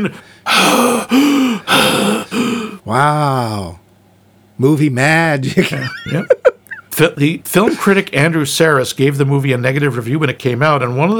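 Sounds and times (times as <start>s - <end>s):
speech: 0.0s - 3.8s, 4.6s - 11.1s
astronaut breathing heavily inside a spacesuit, film sound effect: 0.1s - 2.8s
laughter: 5.4s - 8.1s.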